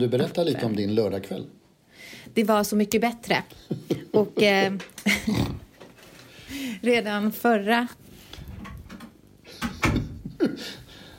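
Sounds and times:
speech: 0.0 - 5.6, 6.5 - 8.0
low steady noise: 0.0 - 11.1
door being closed: 8.6 - 10.2.

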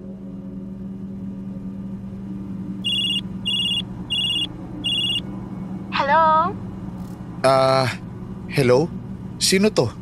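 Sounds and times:
low steady rumble: 0.0 - 10.0
cellphone ringing with bright electronic beeping tone: 2.8 - 5.2
speech: 7.4 - 10.0.

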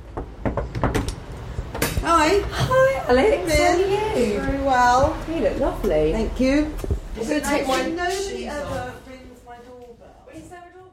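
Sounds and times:
quiet outdoor noise: 0.0 - 10.9
sharp knocks on the front door of a house: 0.1 - 1.1
speech: 2.2 - 9.0.

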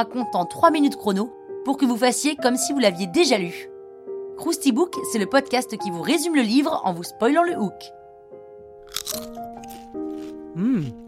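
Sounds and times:
speech: 0.0 - 3.7, 4.4 - 8.0, 10.6 - 11.0
crunchy bite into crispy food: 8.8 - 11.0.

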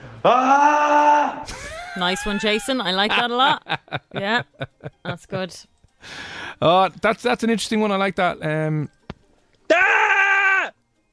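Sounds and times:
recorded scream sent in by a listener: 0.2 - 1.5, 9.7 - 10.8
speech: 0.2 - 9.0, 9.7 - 10.0.

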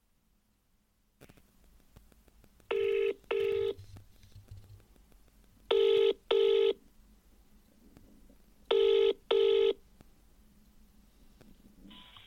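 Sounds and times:
faint hum: 0.0 - 12.2
telephone ringing tone as a phone call is placed: 2.7 - 3.8, 5.7 - 6.8, 8.7 - 9.8.

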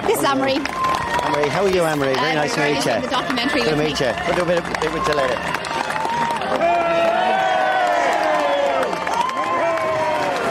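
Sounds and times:
jostling crowd clamour around a politician at a shop: 0.0 - 10.4
scattered shouts and cheers: 0.0 - 10.4
speech: 0.2 - 5.8.

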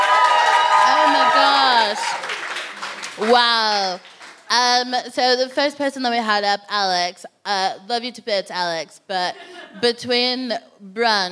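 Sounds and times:
whoops and cheering voices: 0.0 - 2.4
audience applauding: 0.0 - 4.5
speech: 3.2 - 11.3.

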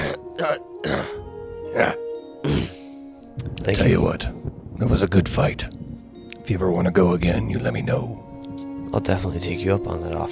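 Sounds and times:
person clearing throat: 0.0 - 1.2, 1.8 - 2.9
person coughing: 0.0 - 1.2, 2.4 - 2.9
speech: 0.4 - 2.6, 3.4 - 5.8, 6.5 - 8.2, 8.9 - 10.3.

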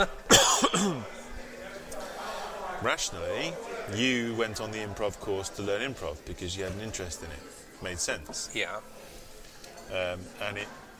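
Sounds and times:
speech: 0.0 - 0.2, 0.8 - 1.2, 2.8 - 9.0, 9.9 - 10.9
sharp coughs: 0.0 - 1.2.

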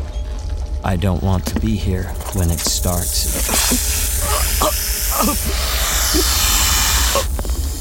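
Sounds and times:
speech: 0.8 - 6.5
snakes hissing: 2.2 - 7.7.

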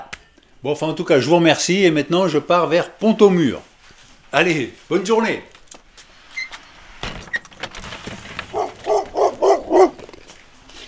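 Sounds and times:
speech: 0.6 - 3.7, 4.3 - 5.5
neighbours' dog barking: 8.5 - 10.1.

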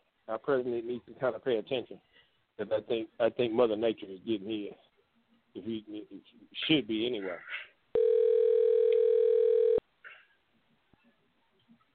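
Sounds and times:
speech: 0.3 - 4.9, 5.5 - 8.0
telephone ringback tone on outgoing call: 8.0 - 9.8.

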